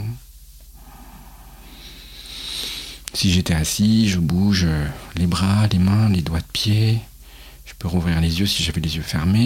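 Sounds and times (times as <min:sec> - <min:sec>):
deep amplified breath drawn in through the nose: 0:00.8 - 0:03.0
speech: 0:03.1 - 0:07.1, 0:07.7 - 0:09.4.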